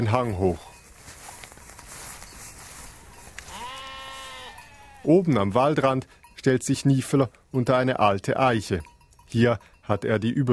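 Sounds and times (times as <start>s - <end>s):
speech: 0.0s - 0.7s, 5.0s - 10.5s
rustling of sheep moving on a hillside: 0.1s - 5.1s
herd of sheep moving on a hillside: 0.9s - 5.1s
sheep bleating on a hillside: 3.2s - 5.2s.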